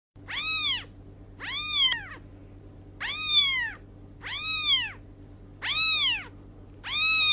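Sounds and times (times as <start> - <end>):
baby kitten meowing: 0.2 - 2.2, 3.0 - 5.0, 5.6 - 7.3.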